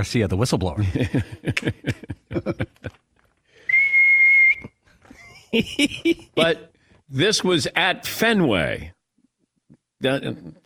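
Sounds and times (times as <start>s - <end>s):
speech: 0.0s - 2.6s, 5.5s - 9.0s, 10.0s - 10.6s
laughter: 0.8s - 3.0s, 5.1s - 6.7s
steady whistle signaling pitch type at a baseball game: 3.6s - 4.8s.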